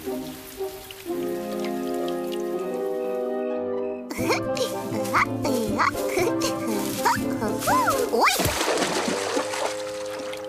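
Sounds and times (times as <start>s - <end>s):
water trickling and pouring: 0.0s - 3.3s, 4.3s - 10.4s
speech: 5.2s - 6.4s.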